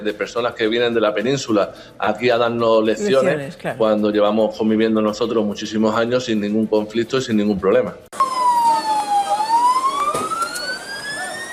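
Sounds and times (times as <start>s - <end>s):
speech: 0.0s - 8.1s
faint street noise in Ceuta Spain: 0.0s - 11.5s
emergency vehicle siren wailing in Ceuta Spain: 8.2s - 11.5s.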